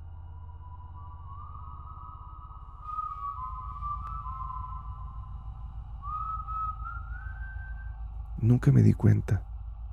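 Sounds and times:
low steady rumble: 0.0 - 9.9
thin wavering human whistle: 0.1 - 8.5
speech: 8.4 - 9.5.

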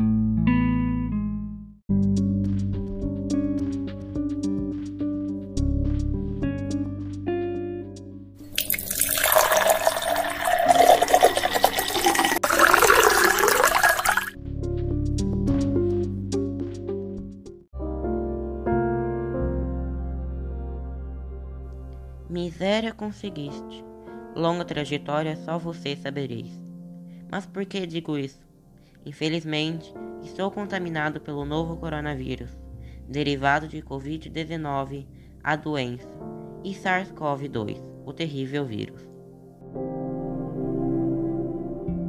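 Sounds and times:
continuous music: 0.1 - 42.0
water filling a glass from clay filter: 8.5 - 14.3
speech: 22.6 - 26.6, 27.3 - 28.4, 29.0 - 39.0.

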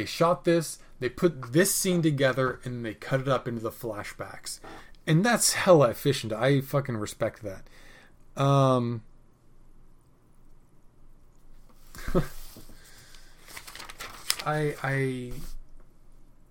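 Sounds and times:
speech: 0.0 - 7.8, 8.4 - 9.1, 12.0 - 12.4, 14.4 - 15.5
crinkly paper rustling: 11.7 - 15.6.

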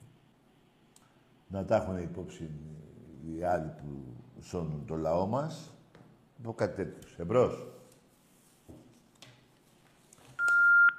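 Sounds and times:
speech: 1.5 - 5.8, 6.4 - 7.8
electronic telephone tone: 10.4 - 10.9.

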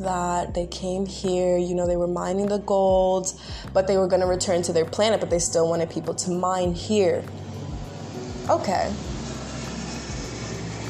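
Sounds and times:
speech: 0.0 - 7.5, 8.5 - 9.1
low droning hum: 0.0 - 10.8
passenger plane flying overhead: 4.6 - 10.8.

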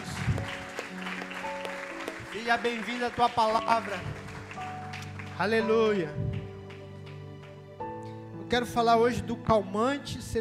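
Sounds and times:
audience applauding: 0.0 - 7.6
steady sustained keyboard chords: 0.0 - 10.4
speech: 2.3 - 4.2, 5.4 - 6.3, 8.5 - 10.4.

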